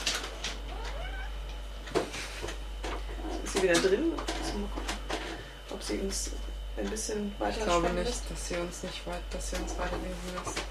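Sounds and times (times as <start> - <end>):
faint hum: 0.0 - 10.6
cat meowing: 0.7 - 1.4
speech: 3.6 - 5.0, 5.8 - 10.6.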